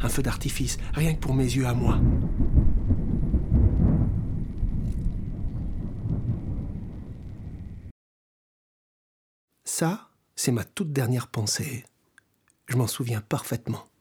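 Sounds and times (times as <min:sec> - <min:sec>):
speech: 0:00.0 - 0:02.4, 0:09.8 - 0:11.9, 0:12.7 - 0:13.9
deep rolling thunder from an approaching thunderstorm: 0:00.0 - 0:07.9
steady hiss of rain: 0:00.0 - 0:07.9.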